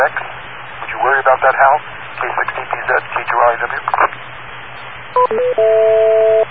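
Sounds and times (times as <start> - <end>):
steady hiss: 0.0 - 5.2
speech: 1.3 - 6.4
touch-tone telephone keypad dialing tones from a tone pad generator: 5.2 - 6.4.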